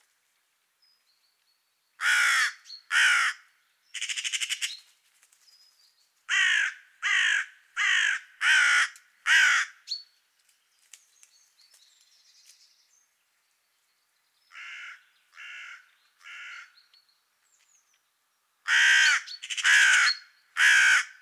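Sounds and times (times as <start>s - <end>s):
Carrion crow cawing: 2.0s - 4.6s, 6.3s - 9.8s, 14.5s - 16.8s, 18.7s - 21.2s.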